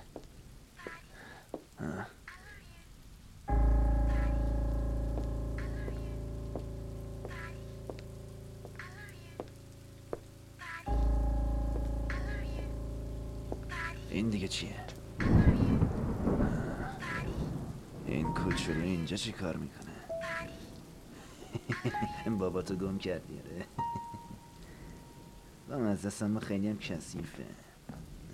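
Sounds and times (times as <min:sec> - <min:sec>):
steady rain: 0:00.0 - 0:28.3
constant low mechanical hum: 0:03.5 - 0:16.4
speech: 0:14.3 - 0:15.0, 0:18.6 - 0:19.9, 0:21.8 - 0:23.7, 0:25.7 - 0:27.7.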